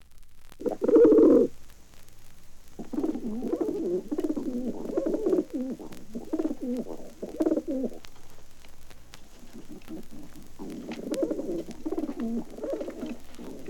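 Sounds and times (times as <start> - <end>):
several pigeons cooing: 0.6 - 1.5, 2.8 - 8.1, 9.3 - 13.6.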